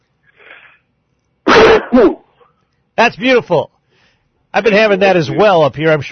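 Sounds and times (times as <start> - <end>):
loud sneeze: 1.4 - 2.3
speech: 1.9 - 2.2, 3.0 - 3.7, 4.5 - 6.0.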